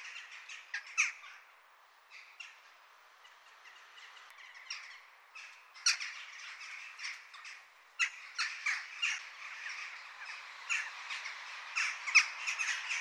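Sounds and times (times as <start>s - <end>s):
jackdaws calling: 0.0s - 1.5s, 2.1s - 12.9s.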